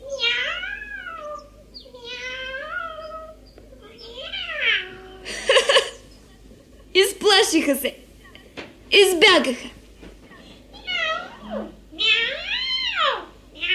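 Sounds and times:
cat meowing: 0.0 - 5.2, 10.8 - 13.7
laughter: 5.2 - 7.7
speech: 7.4 - 8.0, 9.2 - 9.8.

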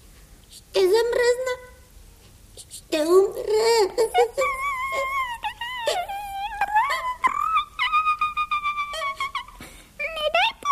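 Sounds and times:
speech: 0.6 - 1.7, 2.9 - 5.1
person crying and wailing: 3.2 - 10.6.

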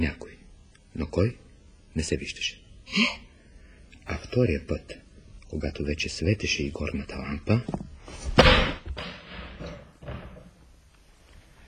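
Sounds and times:
speech: 0.0 - 0.3, 1.0 - 1.4, 2.0 - 3.3, 4.1 - 8.7
heavy thud of someone bumping into a ladder: 8.3 - 10.5
softer rattling bump: 8.4 - 10.6.

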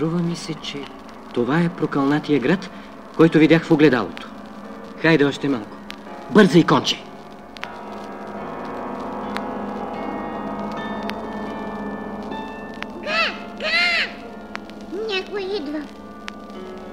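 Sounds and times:
speech: 0.0 - 4.3, 5.0 - 7.0
crow cawing: 13.0 - 14.4.

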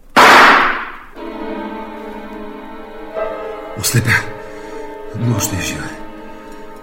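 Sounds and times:
single loud gunshot fired at a grizzly bear: 0.2 - 1.1
harmonically rich droning tone: 1.2 - 6.8
speech: 3.8 - 4.4, 5.2 - 6.0.

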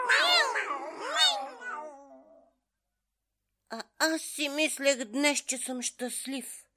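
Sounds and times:
cat meowing: 0.0 - 2.5
speech: 3.7 - 6.6.

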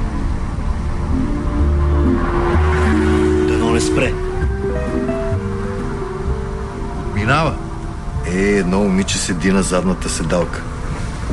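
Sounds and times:
car engine rumbling while driving past: 0.0 - 8.2
faint tire hiss: 0.0 - 11.3
steady road noise: 0.0 - 11.3
speech: 8.4 - 10.7.

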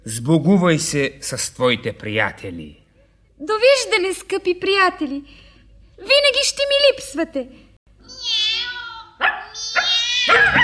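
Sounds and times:
speech: 0.0 - 2.8, 3.4 - 5.4, 6.0 - 7.6, 10.3 - 10.6
small dog whining high-pitched: 8.6 - 10.6
small dog sharp yapping barks: 9.2 - 10.6.

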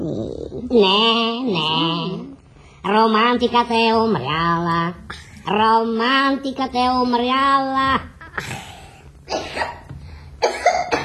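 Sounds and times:
speech: 0.0 - 2.1, 2.8 - 8.6
person coughing: 8.3 - 11.0.

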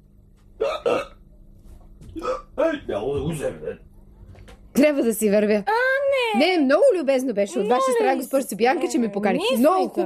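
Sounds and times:
hiccups: 0.6 - 1.2, 2.1 - 2.7
speech: 2.9 - 3.9, 4.8 - 10.0.

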